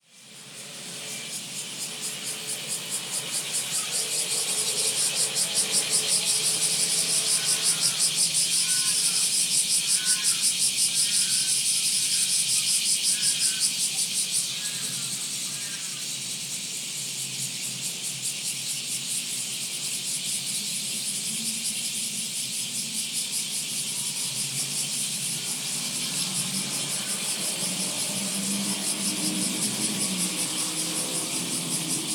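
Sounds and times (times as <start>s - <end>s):
Kumazemi cicada singing in summer: 0.0s - 32.1s.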